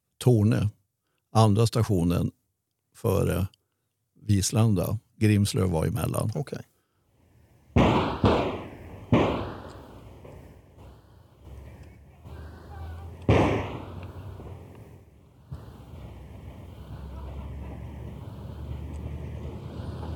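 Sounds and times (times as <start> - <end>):
speech: 0.2 - 2.4, 3.0 - 3.6, 4.2 - 6.7
outdoor gunshots with tails: 7.7 - 19.5.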